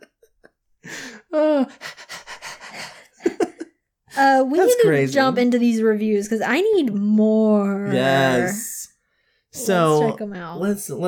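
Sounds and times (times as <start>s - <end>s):
person imitating a dog panting: 0.8s - 3.2s
speech: 4.6s - 8.7s, 9.6s - 11.0s.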